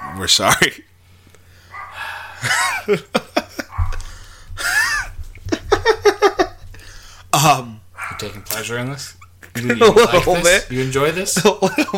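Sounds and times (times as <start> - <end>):
pet dog barking: 0.0 - 0.3, 1.7 - 2.0, 3.6 - 4.0, 8.0 - 8.6
speech: 0.2 - 0.9, 2.4 - 3.3, 7.4 - 11.9
laughter: 2.4 - 6.8, 9.4 - 11.9.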